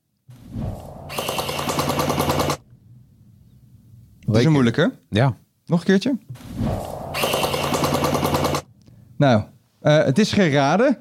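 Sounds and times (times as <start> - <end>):
toy robot gel-bead blaster firing rapid burst of shots: 1.1 - 2.6, 7.2 - 8.7
toy robot gel-bead blaster motor whirring: 1.1 - 2.6, 7.2 - 8.6
speech: 4.3 - 6.9, 9.2 - 11.0.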